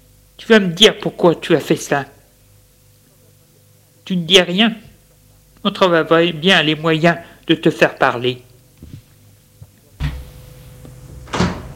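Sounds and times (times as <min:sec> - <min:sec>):
faint steady hum: 0:00.0 - 0:11.7
speech: 0:00.4 - 0:02.2, 0:04.1 - 0:04.8, 0:05.6 - 0:08.5
door latch clunk: 0:11.2 - 0:11.7.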